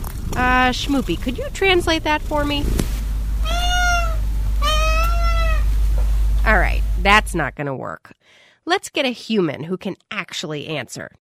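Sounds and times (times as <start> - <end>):
low steady hum: 0.0 - 8.0
speech: 0.4 - 3.6, 6.5 - 11.2
house cat meowing: 3.4 - 5.8.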